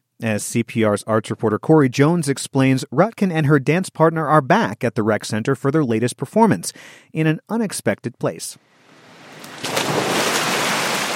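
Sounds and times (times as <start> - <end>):
speech: 0.2 - 8.8
splashing water in an indoor swimming pool at a recreation center: 9.0 - 11.1.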